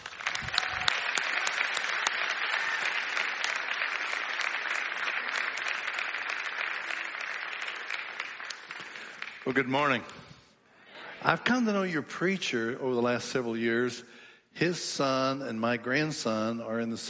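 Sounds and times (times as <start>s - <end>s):
large church audience applauding a preacher: 0.0s - 10.0s
speech: 9.5s - 10.2s, 11.2s - 17.0s.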